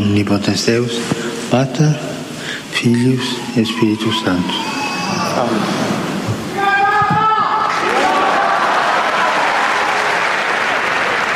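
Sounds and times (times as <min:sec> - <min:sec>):
speech: 0:00.2 - 0:05.9
crowd shouting and cheering: 0:02.9 - 0:11.3
large crowd applauding: 0:06.8 - 0:11.3.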